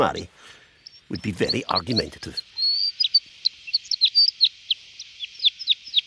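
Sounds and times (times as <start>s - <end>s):
speech: 0.0s - 2.5s
crossbill calling: 0.0s - 6.0s.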